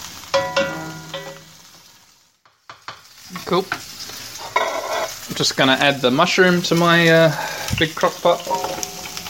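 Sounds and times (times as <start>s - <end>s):
broccoli sizzling in a pan on a medium stove burner: 0.0s - 9.2s
metallic clinks from a pan of broccoli on a medium stove burner: 0.3s - 1.5s
speech: 3.5s - 3.9s, 5.4s - 8.6s.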